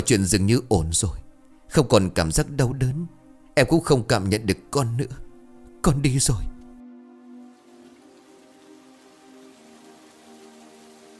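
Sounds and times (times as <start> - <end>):
speech: 0.0 - 5.2, 5.8 - 6.6
rain falling in a soft continuous hiss: 7.4 - 11.1.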